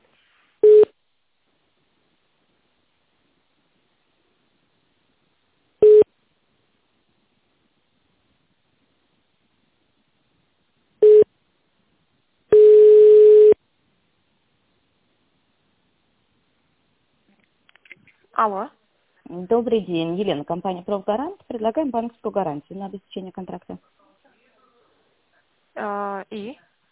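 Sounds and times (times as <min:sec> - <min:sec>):
telephone beeps while a call is being transferred: 0:00.6 - 0:00.9, 0:05.8 - 0:06.1, 0:11.0 - 0:11.3, 0:12.5 - 0:13.6
steady telephone tone while a call is being transferred: 0:05.8 - 0:06.1, 0:11.0 - 0:11.3, 0:12.5 - 0:13.6
speech: 0:18.4 - 0:24.1, 0:25.8 - 0:26.7.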